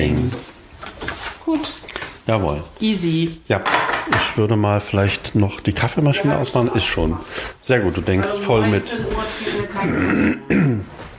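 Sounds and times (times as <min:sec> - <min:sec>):
speech: 0:01.5 - 0:11.0
person clearing throat: 0:09.8 - 0:11.0.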